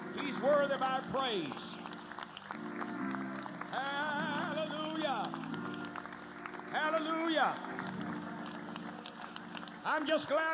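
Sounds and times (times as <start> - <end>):
crowd clapping: 0.0 - 10.5
speech: 0.4 - 1.8, 3.7 - 4.3, 6.7 - 7.9, 9.8 - 10.5.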